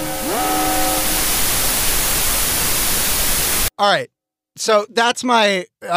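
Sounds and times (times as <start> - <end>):
loud static hiss censoring effect: 0.0 - 3.7
speech: 3.8 - 5.9.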